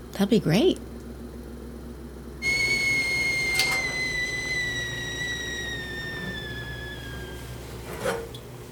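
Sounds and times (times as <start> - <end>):
speech: 0.2 - 0.9
kettle whistling as water boils: 2.4 - 7.9.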